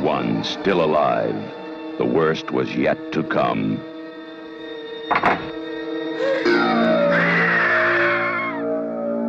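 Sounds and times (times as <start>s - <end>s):
speech: 0.2s - 3.9s, 5.1s - 5.5s
loud sustained scream from a 1978 horror film trailer: 6.2s - 9.2s.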